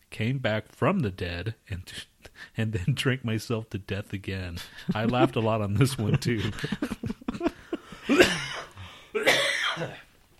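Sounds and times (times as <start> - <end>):
speech: 0.2 - 7.2
laughter: 4.6 - 8.2
harsh coughing fit: 7.8 - 10.0
throat clearing: 8.1 - 10.0.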